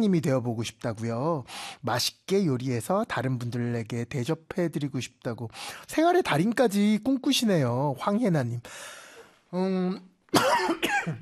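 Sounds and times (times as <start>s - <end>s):
speech: 0.0s - 11.2s
man coughing: 10.3s - 11.2s.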